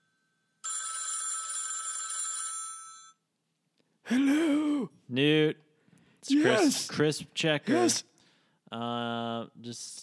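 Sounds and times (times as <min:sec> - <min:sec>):
telephone ringing: 0:00.6 - 0:03.2
speech: 0:04.1 - 0:05.6, 0:06.3 - 0:08.1, 0:08.7 - 0:10.0.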